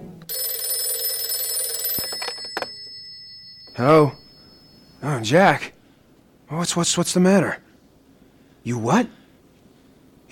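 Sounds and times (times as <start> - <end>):
telephone bell ringing: 0.3 - 5.4
speech: 3.8 - 4.2, 5.0 - 5.8, 6.5 - 7.6, 8.6 - 9.2.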